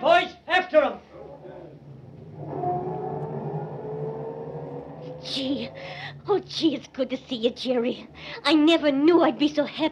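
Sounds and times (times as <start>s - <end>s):
getaway car engine roaring as the vehicle speeds off: 1.8s - 6.4s
speech: 6.4s - 9.8s.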